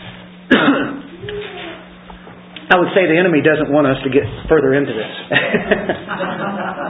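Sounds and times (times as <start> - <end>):
sharp cough with raspy throat-clearing tail during a sermon: 0.5 - 1.1
speech: 2.7 - 6.8
laughter: 5.3 - 6.8.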